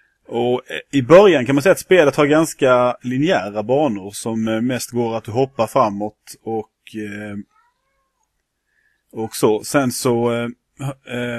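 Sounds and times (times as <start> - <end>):
speech: 0.3 - 7.5, 9.1 - 11.3
cat meowing: 7.4 - 8.2.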